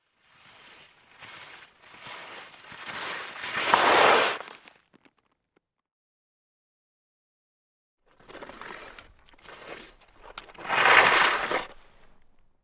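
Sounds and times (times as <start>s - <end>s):
skis travelling and stopping on snow: 0.0s - 4.8s, 8.2s - 12.3s.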